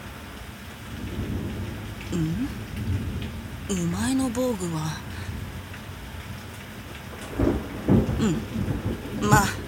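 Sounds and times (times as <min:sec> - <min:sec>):
steady rain: 0:00.0 - 0:09.6
deep rolling thunder rumble: 0:00.9 - 0:03.7, 0:05.1 - 0:09.6
speech: 0:02.1 - 0:03.0, 0:03.7 - 0:05.1, 0:08.2 - 0:09.6.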